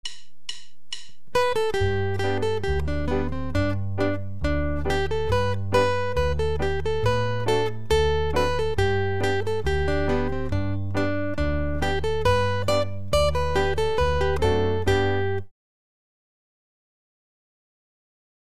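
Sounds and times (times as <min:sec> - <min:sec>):
guitar tune: 0:01.3 - 0:15.5.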